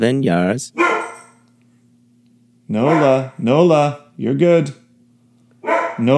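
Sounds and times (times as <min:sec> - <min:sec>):
speech: 0:00.0 - 0:01.1, 0:02.7 - 0:04.8, 0:06.0 - 0:06.1
steady low electrical hum: 0:00.0 - 0:06.1
female dog barking: 0:00.8 - 0:01.4, 0:02.7 - 0:03.4, 0:05.6 - 0:06.1.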